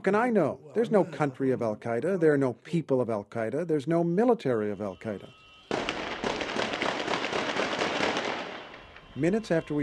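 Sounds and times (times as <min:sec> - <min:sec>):
speech: 0:00.0 - 0:05.4, 0:09.2 - 0:09.8
celebratory gunfire bangs and cracks in the street: 0:05.7 - 0:08.9.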